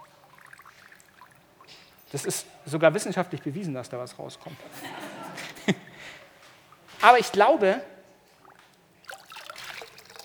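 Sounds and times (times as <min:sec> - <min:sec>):
water dripping from a squeezed sponge: 0:00.0 - 0:04.4, 0:08.4 - 0:10.2
speech: 0:02.1 - 0:04.9, 0:07.0 - 0:07.9
laughter: 0:04.4 - 0:06.2.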